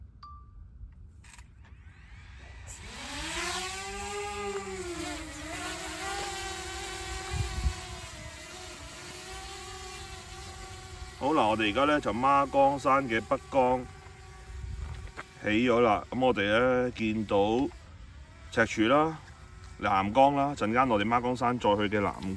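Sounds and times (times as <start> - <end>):
small camera drone rotors buzzing in flight: 1.2 - 22.3
wind noise: 1.9 - 8.5, 14.2 - 15.4
speech: 11.3 - 14.0, 15.4 - 17.8, 18.5 - 19.2, 19.8 - 22.3.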